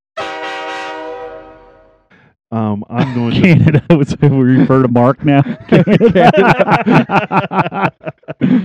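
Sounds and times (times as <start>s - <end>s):
train-style air horn blast from train horns fitted on a Jeep: 0.2s - 2.2s
speech: 2.5s - 8.6s
laughter: 2.6s - 8.6s.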